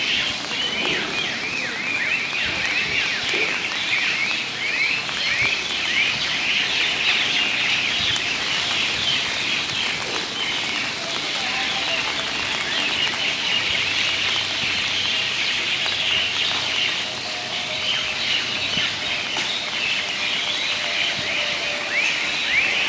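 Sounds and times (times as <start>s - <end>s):
birds chirping: 0.0s - 22.8s
rain falling: 0.0s - 22.8s.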